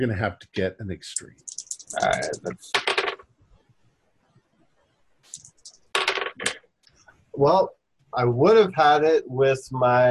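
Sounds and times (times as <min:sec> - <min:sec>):
speech: 0:00.0 - 0:03.0, 0:07.4 - 0:10.0
dice clattering across a table during a tabletop role-playing game: 0:02.8 - 0:03.2, 0:05.3 - 0:06.6.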